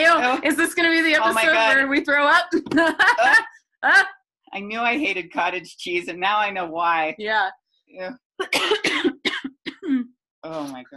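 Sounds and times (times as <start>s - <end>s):
speech: 0.4s - 9.2s, 9.8s - 10.9s
harsh breathy coughs: 8.4s - 10.2s.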